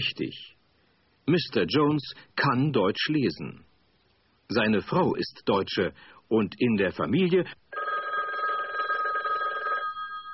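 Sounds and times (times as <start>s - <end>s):
speech: 0.0s - 0.6s, 1.3s - 3.7s, 4.5s - 7.6s
telephone ringing with a trilling electronic bell: 7.7s - 10.3s.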